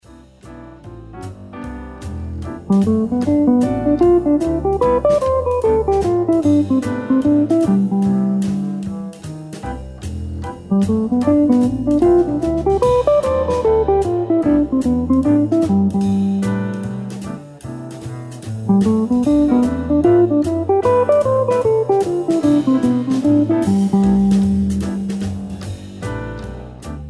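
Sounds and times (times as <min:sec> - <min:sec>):
guitar lick in Ionian mode: 0:02.7 - 0:09.0, 0:10.7 - 0:16.9, 0:18.7 - 0:25.6.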